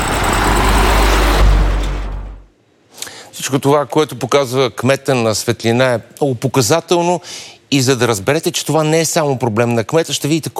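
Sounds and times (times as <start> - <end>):
vehicle rushing past with engine and tire roar: 0.0 - 2.5
speech: 3.5 - 10.5.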